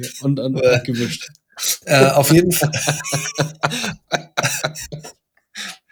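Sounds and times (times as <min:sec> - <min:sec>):
speech: 0:00.0 - 0:05.2
laughter: 0:00.0 - 0:05.8
person coughing into their forearm: 0:00.6 - 0:05.7.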